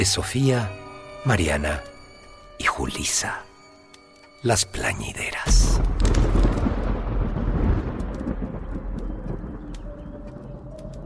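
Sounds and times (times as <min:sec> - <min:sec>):
speech: 0:00.0 - 0:01.9, 0:02.7 - 0:03.5, 0:04.4 - 0:06.5
deep rolling peal of thunder: 0:05.5 - 0:11.0.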